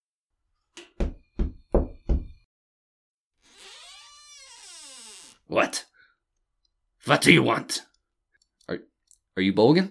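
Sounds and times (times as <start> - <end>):
solid knocks on a door: 0.9 - 2.4
long wavering creak-like tone: 3.5 - 5.4
speech: 5.5 - 5.9, 7.0 - 7.9, 8.7 - 9.8.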